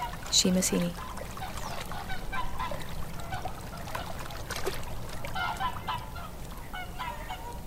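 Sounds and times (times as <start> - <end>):
water lapping on Lough Neagh: 0.0 - 7.6
speech: 0.3 - 1.1
flock of whooper swans calling on Lough Neagh on a misty October morning: 0.8 - 4.3, 5.3 - 7.6.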